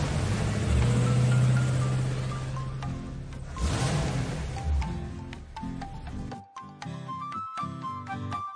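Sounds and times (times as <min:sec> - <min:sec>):
heavy glass-carrying tractor unit with trailer rumbling and revving as it pulls away: 0:00.0 - 0:06.4.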